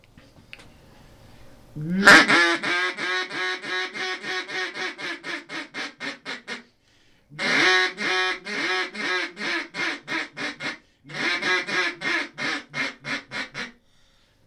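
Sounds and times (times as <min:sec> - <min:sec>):
checkered walnut duck call with ivory inlays blown in a hail call: 0:01.8 - 0:06.7, 0:07.4 - 0:13.8.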